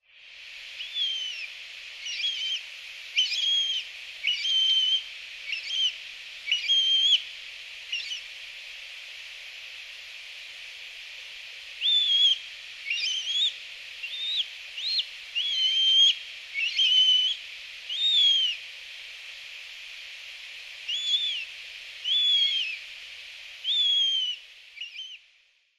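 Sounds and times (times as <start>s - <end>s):
Eurasian jay calling in Hyogo: 3.2s - 7.2s, 11.8s - 18.6s, 20.9s - 22.8s, 23.7s - 25.2s.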